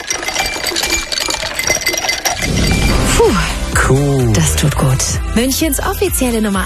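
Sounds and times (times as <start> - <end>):
ice cubes clinking against glass: 0.0 - 3.2
speech: 3.2 - 6.6.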